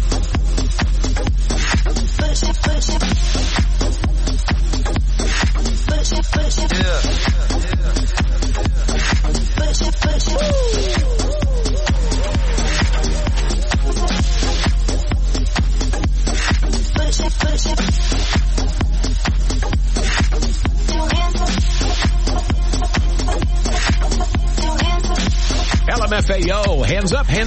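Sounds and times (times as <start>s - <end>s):
electronic dance-pop track with four-on-the-floor beat and bright synths: 0.0s - 27.4s.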